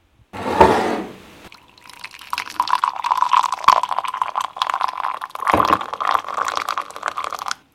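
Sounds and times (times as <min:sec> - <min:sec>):
boiling water pouring from a samovar tap into a cup: 0:01.5 - 0:07.6.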